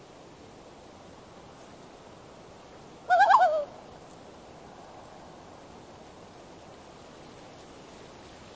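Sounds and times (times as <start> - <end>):
loon giving a wavering warbling call: 3.1 - 3.8.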